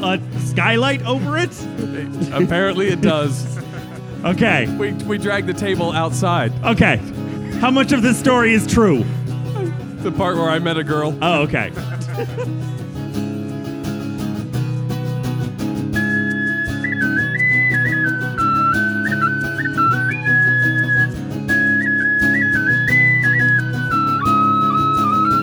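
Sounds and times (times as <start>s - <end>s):
speech: 0.0s - 9.2s, 10.0s - 12.8s
steady instrumental backing: 0.0s - 25.4s
laughter: 0.9s - 7.0s, 7.7s - 12.9s
whistled solo melody with a wavering sustained tune: 10.4s - 12.4s, 15.8s - 25.4s.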